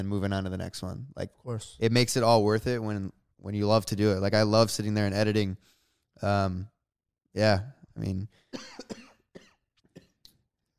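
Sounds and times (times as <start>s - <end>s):
speech: 0.0s - 6.7s, 7.4s - 9.0s
person coughing: 8.6s - 10.2s.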